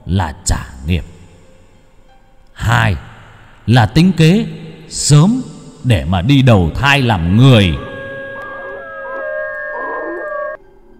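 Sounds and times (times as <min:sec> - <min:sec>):
speech: 0:00.1 - 0:01.1, 0:02.6 - 0:03.1, 0:03.7 - 0:07.9
pack of dogs howling: 0:07.2 - 0:10.6.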